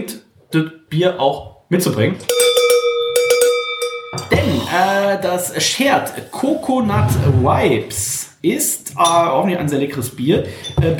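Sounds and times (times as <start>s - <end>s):
speech: 0.5s - 2.4s, 4.7s - 10.9s
bright handbell ringing: 2.3s - 4.4s.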